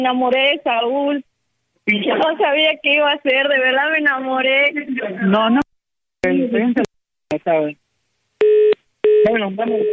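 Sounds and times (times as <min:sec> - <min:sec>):
speech: 0:00.0 - 0:07.8, 0:09.2 - 0:09.9
telephone line tone after the call is hung up: 0:08.4 - 0:09.9.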